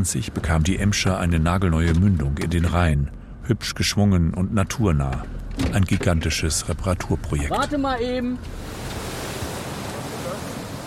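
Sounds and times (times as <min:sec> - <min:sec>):
speech: 0:00.0 - 0:09.0
churning water pouring out of a pumping station outlet: 0:08.5 - 0:10.8.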